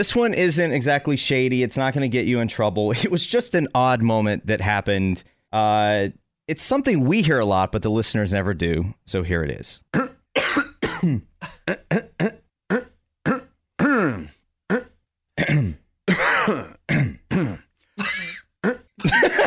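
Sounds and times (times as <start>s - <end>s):
speech: 0.0s - 10.1s
throat clearing and coughing before going on air: 9.9s - 19.2s
laughter: 19.0s - 19.4s.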